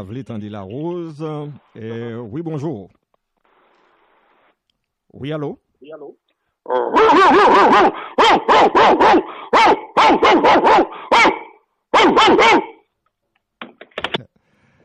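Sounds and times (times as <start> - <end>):
speech: 0.0 - 3.0, 5.1 - 11.4, 12.1 - 12.7
dog barking loudly in excited yaps: 6.7 - 12.8.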